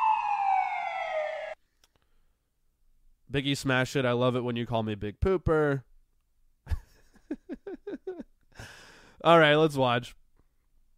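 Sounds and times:
police siren wailing: 0:00.0 - 0:01.6
speech: 0:03.3 - 0:05.9, 0:09.2 - 0:10.2.

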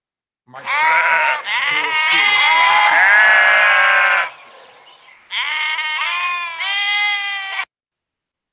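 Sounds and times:
sheep bleating sound effect: 0:00.5 - 0:04.4, 0:05.3 - 0:07.7.

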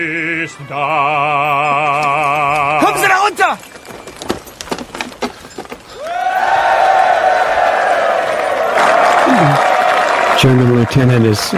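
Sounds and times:
speech: 0:00.0 - 0:02.8, 0:10.4 - 0:11.5
small group clapping: 0:06.0 - 0:11.5.

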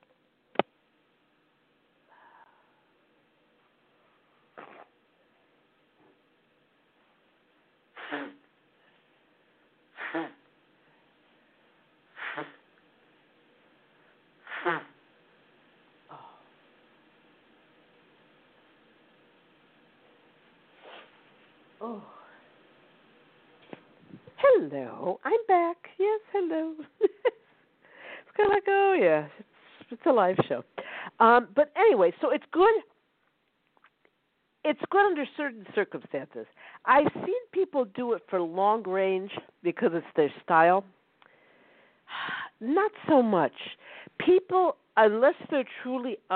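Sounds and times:
person blowing their nose after sneezing: 0:04.5 - 0:04.9, 0:07.9 - 0:08.5, 0:09.9 - 0:10.5, 0:12.1 - 0:12.7, 0:14.4 - 0:15.0, 0:20.8 - 0:21.2
speech: 0:21.8 - 0:22.2, 0:24.6 - 0:27.0, 0:28.4 - 0:32.9, 0:34.6 - 0:41.0, 0:42.1 - 0:46.3.

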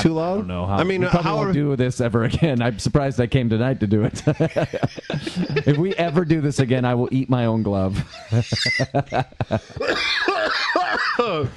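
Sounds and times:
speech: 0:00.0 - 0:11.5
strained breathy laughing and vocal noises: 0:04.5 - 0:06.4, 0:07.4 - 0:11.5
person in a harsh coughing fit: 0:09.8 - 0:11.5.

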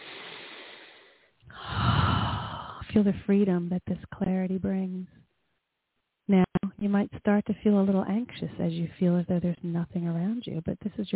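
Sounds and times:
deep breath in during a guided meditation: 0:00.0 - 0:02.9
speech: 0:02.9 - 0:05.3, 0:06.3 - 0:11.1.

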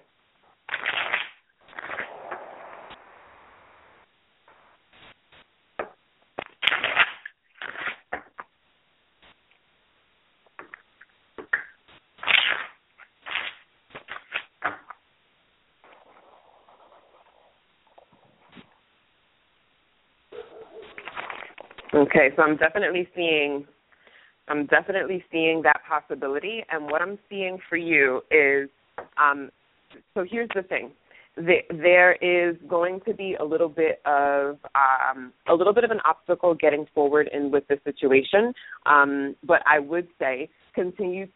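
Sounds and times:
deck of cards being shuffled: 0:00.7 - 0:02.5, 0:06.4 - 0:08.5, 0:11.5 - 0:14.9, 0:20.8 - 0:22.0
speech: 0:22.0 - 0:23.7, 0:24.5 - 0:29.6, 0:30.2 - 0:41.3.

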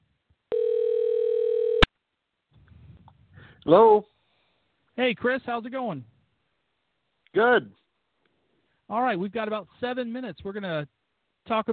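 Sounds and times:
telephone dial tone while calling a guest: 0:00.5 - 0:01.9
speech: 0:03.6 - 0:04.1, 0:05.0 - 0:06.1, 0:07.3 - 0:07.8, 0:08.9 - 0:11.7.

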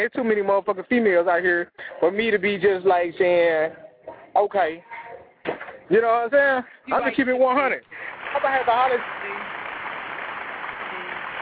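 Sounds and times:
speech: 0:00.0 - 0:05.0, 0:05.9 - 0:09.6
audience clapping: 0:08.0 - 0:11.4.

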